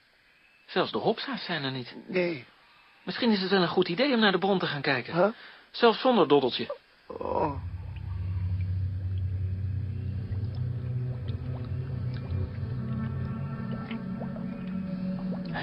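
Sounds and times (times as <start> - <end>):
speech: 0.7 - 7.7
water being sucked up through a hose: 7.1 - 15.6.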